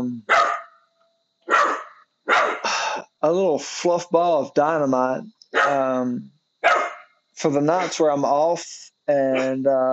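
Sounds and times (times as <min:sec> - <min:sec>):
Australian Shepherd barking: 0:00.3 - 0:00.8, 0:01.5 - 0:02.7, 0:05.5 - 0:05.9, 0:06.6 - 0:07.1, 0:09.3 - 0:09.6
speech: 0:03.2 - 0:06.4, 0:07.4 - 0:09.9.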